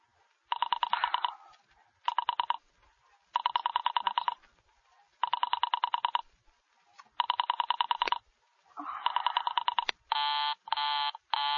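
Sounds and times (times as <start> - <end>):
telephone ringing as an operator places a call: 0.5 - 1.3, 2.1 - 2.6, 3.4 - 4.4, 5.2 - 6.2, 7.2 - 8.2, 9.1 - 11.5.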